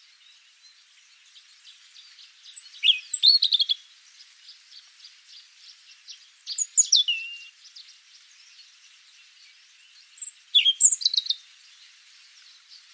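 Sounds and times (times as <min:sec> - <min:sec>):
European robin giving thin high twittering phrases: 0:02.5 - 0:03.8, 0:06.1 - 0:07.5, 0:10.2 - 0:11.4.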